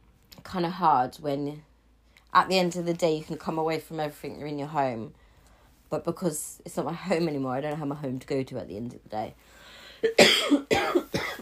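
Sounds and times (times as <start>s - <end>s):
speech: 0.4s - 1.7s, 2.3s - 5.2s, 5.9s - 11.0s
harsh raspy coughing fit: 10.0s - 11.3s.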